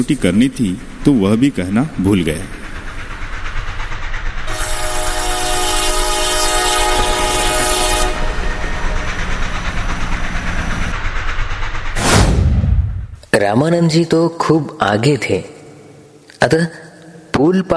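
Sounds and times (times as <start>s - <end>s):
speech: 0.0s - 2.6s, 13.5s - 15.5s, 16.4s - 16.8s, 17.4s - 17.7s
train rumbling: 0.0s - 15.2s
long loud train horn blast: 4.5s - 9.4s.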